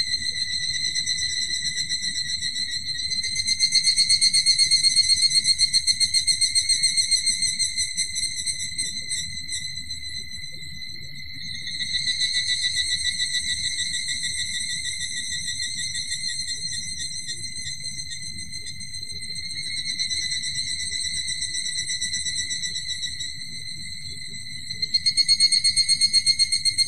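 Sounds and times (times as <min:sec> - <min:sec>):
evening cicada calling with high ringing pulsed trill: 0:00.0 - 0:26.8.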